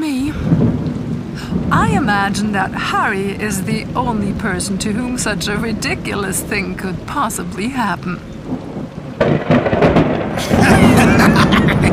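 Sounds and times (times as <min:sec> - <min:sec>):
rain: 0:00.0 - 0:11.9
rolling thunder of an approaching storm: 0:00.1 - 0:11.9
speech: 0:02.0 - 0:08.6
laughter: 0:10.4 - 0:11.9.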